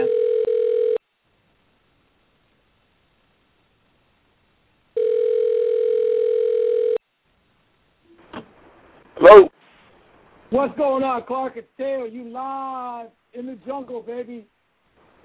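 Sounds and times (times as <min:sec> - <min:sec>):
telephone dial tone while a call is placed: 0:00.0 - 0:01.0, 0:05.0 - 0:07.0
speech: 0:10.6 - 0:14.6.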